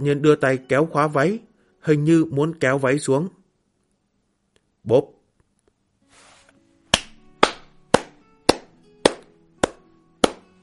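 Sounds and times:
speech: 0.0 - 3.4, 4.8 - 5.2
slow hand clapping: 6.9 - 10.5.

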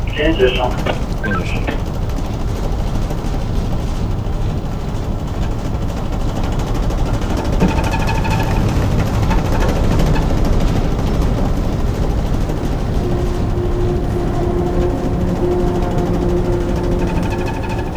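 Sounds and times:
ship's four bow tunnel thrusters turning the vessel in place: 0.0 - 4.6, 5.5 - 17.9
speech: 0.2 - 1.8.

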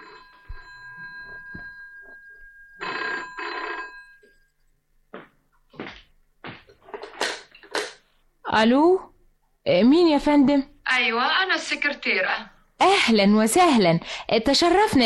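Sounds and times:
telephone bell ringing: 0.0 - 4.6
speech: 8.5 - 15.0.

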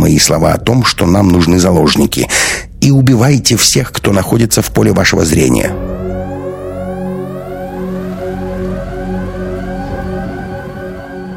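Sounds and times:
speech: 0.1 - 5.9
sirens wailing under the metal ceiling of an airlock: 5.4 - 11.3.

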